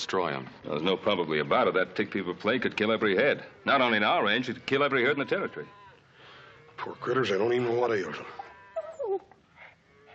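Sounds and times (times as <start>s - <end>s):
speech: 0.0s - 5.8s, 6.8s - 8.4s
ranch dog whining: 8.3s - 10.1s.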